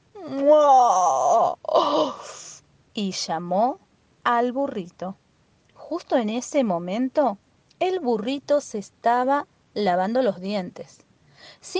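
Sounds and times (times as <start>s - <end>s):
human voice imitating a giraffe's long voiced yawn: 0.2s - 2.6s
speech: 3.0s - 5.2s, 5.9s - 11.7s.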